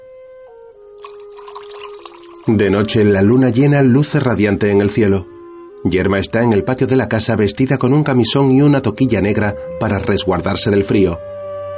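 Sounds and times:
milk poured from a glass back into a jug: 1.0 - 2.9
speech: 2.5 - 11.3.

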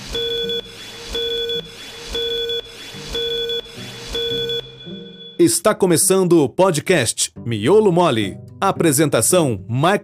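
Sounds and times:
steady mid-pitched beep tone: 0.0 - 5.4
speech: 5.4 - 10.0.

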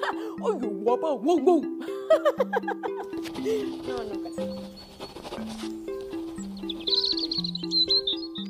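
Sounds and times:
stepped melody of low tones: 0.0 - 8.4
speech: 0.4 - 5.8
laughter: 1.9 - 3.7
birds twittering and chirping: 2.4 - 8.4.

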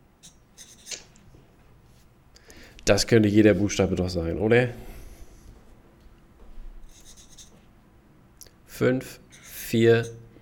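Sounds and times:
pens scratching across paper during a quiz: 0.2 - 1.1, 6.9 - 7.6
speech: 2.9 - 4.9, 8.8 - 10.2.

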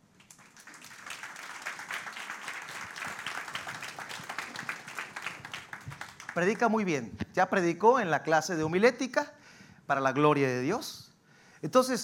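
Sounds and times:
room full of people applauding: 0.0 - 6.9
speech: 6.4 - 11.0, 11.6 - 12.0.

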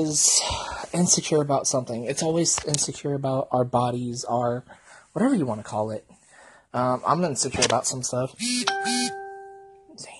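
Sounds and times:
speech: 0.0 - 9.1
phone notification tone: 8.4 - 9.9.

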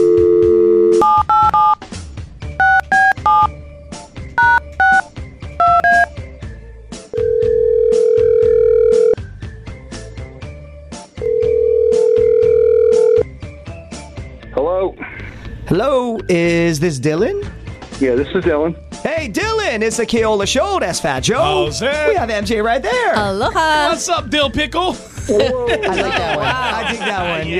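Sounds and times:
telephone dial tone: 0.0 - 1.8, 7.2 - 9.2, 11.3 - 13.2
telephone ringing tones: 0.0 - 1.8, 2.6 - 3.5, 7.2 - 9.2, 11.2 - 13.2
telephone keypad beeps: 1.0 - 1.8, 2.6 - 3.5, 4.4 - 5.0, 5.6 - 6.1
speech: 16.3 - 27.5
laughter: 25.1 - 27.5.

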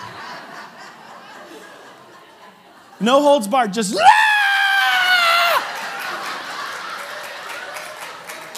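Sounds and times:
laughter: 0.0 - 3.0, 4.7 - 8.5
speech: 3.0 - 4.2
person screaming with a piercing high pitch: 3.9 - 5.6.

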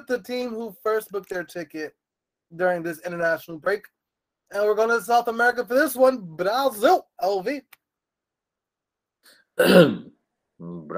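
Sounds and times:
speech: 0.0 - 7.8, 9.2 - 10.9
throat clearing: 9.6 - 10.2.

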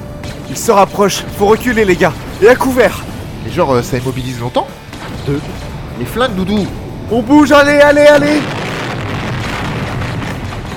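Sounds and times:
speech: 0.5 - 8.6
heavy rumbling explosion from a video game firefight: 8.2 - 10.7.

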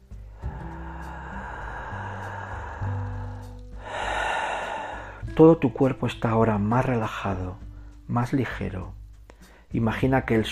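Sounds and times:
calm sustained musical tones: 0.0 - 8.2
slow deep breath drawn in and let out: 0.1 - 5.3, 9.3 - 9.7
speech: 5.4 - 9.0, 9.7 - 10.5.

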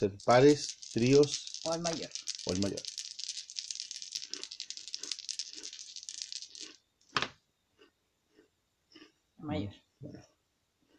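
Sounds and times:
speech: 0.0 - 2.9, 9.4 - 10.3
dice rattling: 0.0 - 7.3
faint ticks of dice settling: 0.0 - 8.4.

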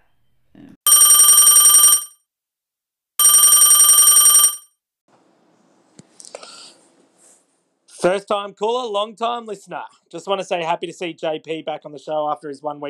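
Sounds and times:
telephone bell ringing for an incoming call: 0.9 - 2.2, 3.2 - 4.7
speech: 8.0 - 12.8.

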